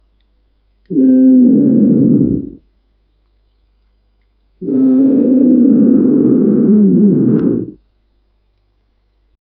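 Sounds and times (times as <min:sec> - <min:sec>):
lion roar: 0:00.9 - 0:02.6, 0:04.6 - 0:07.8.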